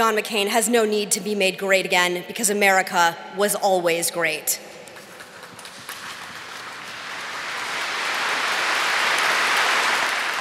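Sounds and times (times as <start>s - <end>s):
speech: 0.0s - 4.7s
crowd applause: 5.0s - 10.3s.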